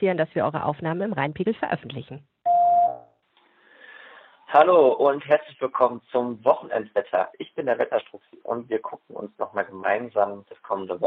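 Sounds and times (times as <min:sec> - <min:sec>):
speech: 0:00.0 - 0:02.3, 0:04.5 - 0:11.0
faint hiss: 0:00.0 - 0:11.0
electronic beep tone: 0:02.4 - 0:03.1.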